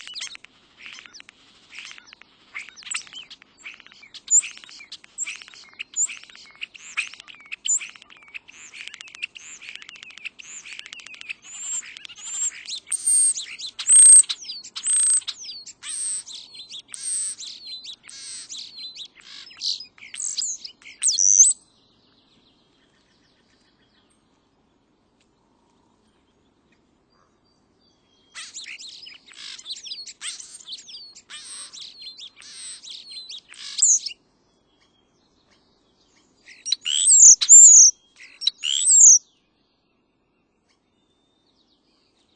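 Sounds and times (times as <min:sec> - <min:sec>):
European starling calling: 0:00.0 - 0:21.6, 0:28.3 - 0:34.2, 0:36.5 - 0:39.2.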